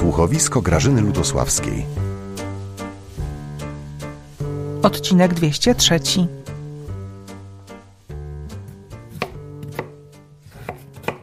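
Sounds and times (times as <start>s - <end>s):
steady low tonal background: 0.0s - 10.5s
speech: 0.2s - 2.1s, 4.8s - 6.5s
knife chopping potatoes for a salad: 9.0s - 11.2s.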